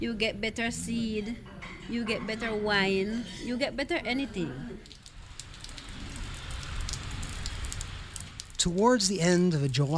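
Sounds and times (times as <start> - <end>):
speech: 0.0 - 5.0, 8.6 - 9.9
heavy rain pouring down in Pearl Lagoon: 4.8 - 9.9
deep rumbling wash of rain: 5.2 - 9.9.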